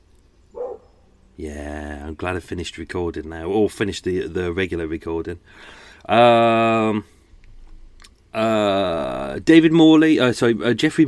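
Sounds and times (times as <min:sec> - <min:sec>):
quiet hum: 0:00.0 - 0:11.0
dog bark from outside: 0:00.6 - 0:00.9
speech: 0:01.4 - 0:07.2, 0:08.4 - 0:11.0.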